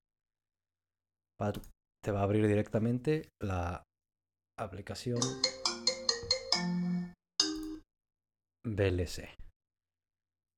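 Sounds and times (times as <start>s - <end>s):
speech: 1.4s - 3.9s, 4.6s - 5.6s, 8.6s - 9.4s
synthetic phone ringtone remix: 5.2s - 7.8s.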